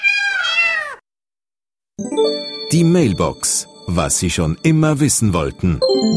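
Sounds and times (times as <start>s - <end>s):
cat meowing: 0.0s - 1.0s
speech: 2.0s - 6.1s.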